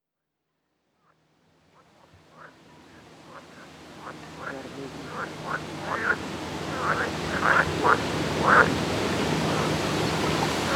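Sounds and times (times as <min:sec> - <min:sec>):
frogs croaking at a dike in Gdańsk, Poland: 0:01.0 - 0:10.7.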